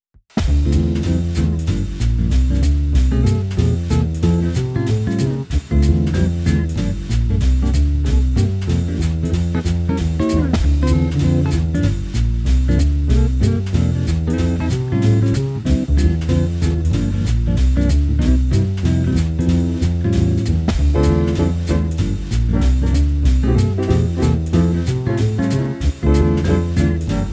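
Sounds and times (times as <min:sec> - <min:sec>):
fast swing jazz at 432 Hz: 0:00.4 - 0:27.3.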